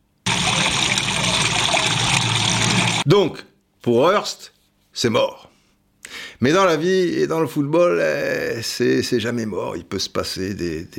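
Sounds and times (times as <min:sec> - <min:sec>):
heavy loud stream of liquid gushing: 0:00.3 - 0:03.0
speech: 0:03.1 - 0:05.5, 0:06.1 - 0:10.9.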